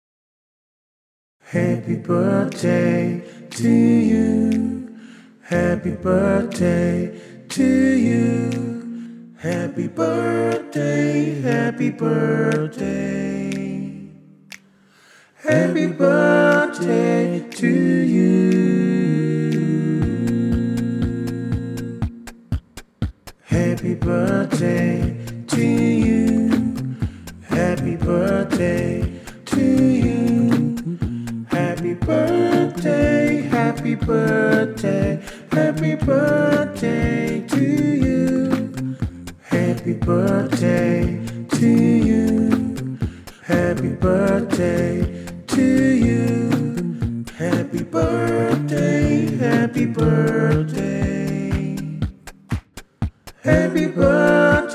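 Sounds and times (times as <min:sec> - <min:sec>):
beatbox: 0:01.5 - 0:54.7.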